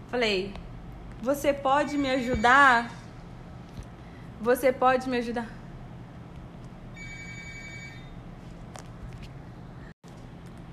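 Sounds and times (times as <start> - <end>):
speech: 0.1 - 0.6, 1.2 - 3.0, 4.4 - 5.6
office telephone ringing with electronic trill: 6.9 - 8.2.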